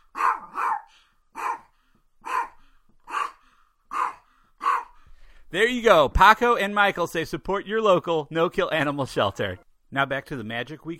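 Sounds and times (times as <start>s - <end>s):
dog barking: 0.1s - 5.0s
speech: 5.5s - 10.9s.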